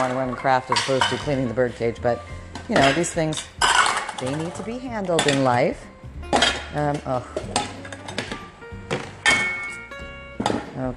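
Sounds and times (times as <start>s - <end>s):
dishes clinking and clattering while being stacked and put away: 0.0s - 1.6s, 2.6s - 5.6s, 7.4s - 10.8s
speech: 0.0s - 3.6s, 4.2s - 5.9s, 6.7s - 7.6s.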